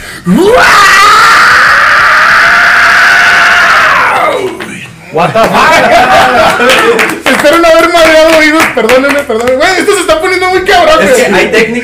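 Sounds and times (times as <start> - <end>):
speech: 0.2 - 1.1, 5.2 - 11.8
loud high-pitched vocal scream: 0.3 - 4.5
laughter: 5.1 - 7.9.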